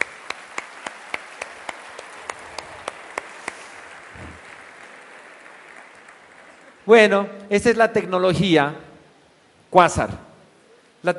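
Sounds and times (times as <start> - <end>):
audience applause at a sales seminar: 0.0 - 6.9
low hiss: 0.0 - 11.1
speech: 6.9 - 8.8, 9.7 - 10.2.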